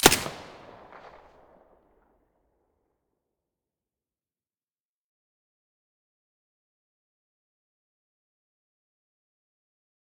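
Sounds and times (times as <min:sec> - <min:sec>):
silenced submachine gun shots: 0:00.0 - 0:01.6.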